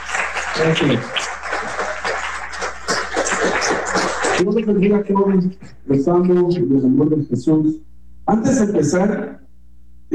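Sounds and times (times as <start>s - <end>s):
audience clapping for their bishop: 0.0s - 4.5s
laughter: 0.0s - 6.8s
speech: 0.6s - 1.4s, 4.4s - 9.4s.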